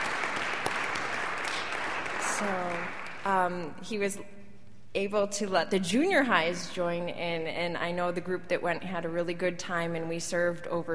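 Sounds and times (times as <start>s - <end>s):
crowd clapping in an indoor room: 0.0s - 3.6s
speech: 2.4s - 4.4s, 5.0s - 10.9s.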